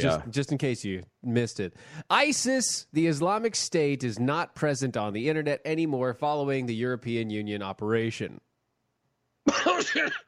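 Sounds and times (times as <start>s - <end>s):
speech: 0.0s - 8.5s, 9.5s - 10.2s
harsh raspy coughing: 9.5s - 10.2s.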